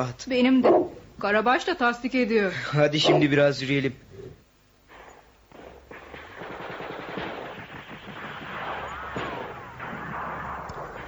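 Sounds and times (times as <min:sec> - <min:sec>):
speech: 0:00.0 - 0:04.3
heavier booming blasts in battle: 0:04.9 - 0:11.0
scattered gunshots in battle: 0:04.9 - 0:11.0
rapid machine-gun bursts in battle: 0:05.5 - 0:11.0.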